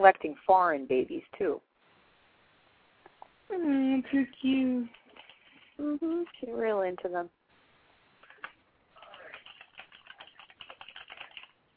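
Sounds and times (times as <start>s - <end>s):
speech: 0.0s - 1.7s, 3.5s - 5.0s, 5.8s - 7.4s
typing on a computer keyboard: 4.9s - 6.4s, 8.2s - 11.6s.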